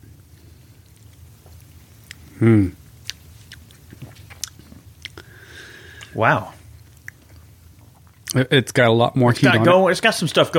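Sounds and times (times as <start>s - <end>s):
chewing and crunching while tasting food: 0.3s - 8.4s
speech: 2.4s - 2.8s, 6.2s - 6.6s, 8.4s - 10.5s.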